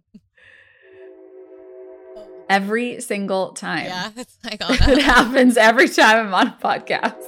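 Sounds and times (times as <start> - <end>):
sharp breathy sound: 0.4 - 2.4
low rumbling: 0.7 - 3.3
passing train horn blaring: 0.7 - 3.9, 5.1 - 7.2
speech: 2.5 - 7.2
laughter: 4.0 - 7.1.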